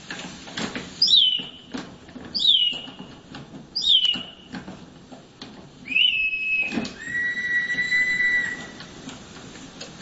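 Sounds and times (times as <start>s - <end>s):
hiss: 0.0s - 10.0s
clockwork mechanical singing bird whistling: 1.0s - 1.7s, 2.4s - 3.0s, 3.8s - 4.5s, 5.8s - 8.9s.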